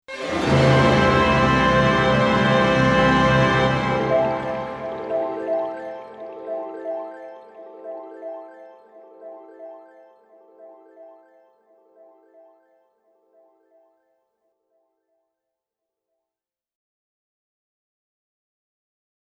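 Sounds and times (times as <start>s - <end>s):
orchestral ending hit effect from a synthesizer: 0.1s - 6.0s.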